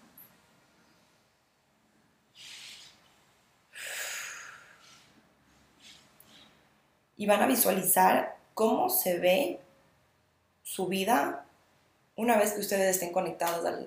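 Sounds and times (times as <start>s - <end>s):
slow deep breath in and airy exhale: 2.3s - 6.8s
speech: 7.2s - 9.6s, 10.7s - 11.4s, 12.2s - 13.8s.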